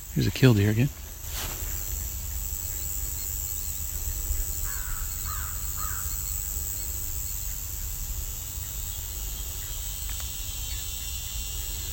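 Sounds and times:
steady high-pitched drone of crickets and insects: 0:00.0 - 0:11.9
speech: 0:00.2 - 0:01.0
American crow cawing: 0:04.6 - 0:06.2.

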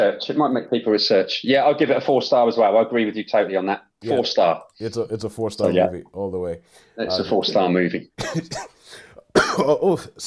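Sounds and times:
speech: 0:00.0 - 0:10.2
throat clearing: 0:08.2 - 0:09.9
person coughing while recovering from a sore throat: 0:08.2 - 0:10.0.

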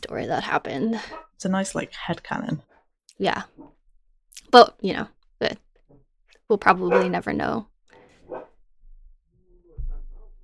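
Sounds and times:
speech: 0:00.2 - 0:03.7, 0:04.4 - 0:05.6, 0:06.5 - 0:07.7
dog barking sharply in a tantrum: 0:06.8 - 0:07.2, 0:08.2 - 0:08.6.

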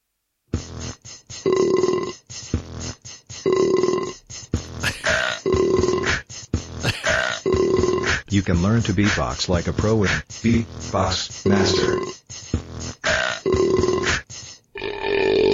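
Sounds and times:
loud burps played by a voice assistant skill: 0:01.4 - 0:02.2, 0:03.4 - 0:04.2, 0:04.8 - 0:06.2, 0:06.8 - 0:08.2, 0:13.0 - 0:15.5
speech: 0:08.4 - 0:12.2.

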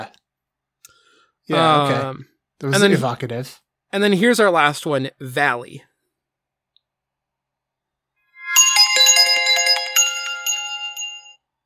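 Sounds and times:
speech: 0:01.5 - 0:05.9
bright chimes playing a quick melody: 0:08.4 - 0:11.4.

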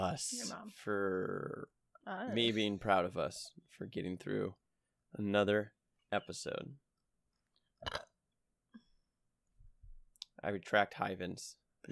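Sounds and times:
speech: 0:00.0 - 0:06.8, 0:07.8 - 0:08.1, 0:10.4 - 0:11.9
person burping: 0:07.8 - 0:08.1.

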